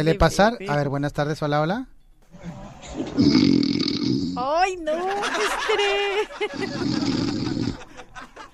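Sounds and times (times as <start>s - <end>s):
speech: 0.0s - 7.2s
person imitating snoring with their voice: 3.0s - 4.5s, 6.5s - 7.9s
laughter: 4.9s - 8.5s.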